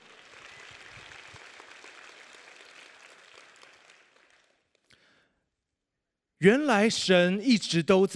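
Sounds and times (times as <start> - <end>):
large crowd applauding: 0.0 - 5.2
speech: 6.4 - 8.1.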